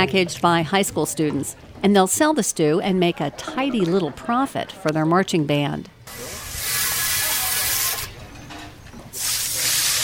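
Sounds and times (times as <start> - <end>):
speech: 0.0 - 6.4
water spraying to wash down massive stew pots: 6.1 - 8.1, 9.2 - 10.0.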